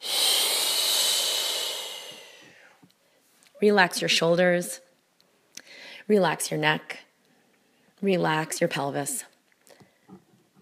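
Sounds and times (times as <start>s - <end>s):
deep breath in through the nose and out through the mouth: 0.0s - 3.3s, 5.6s - 6.1s
speech: 3.6s - 4.8s, 6.1s - 7.0s, 8.0s - 9.3s.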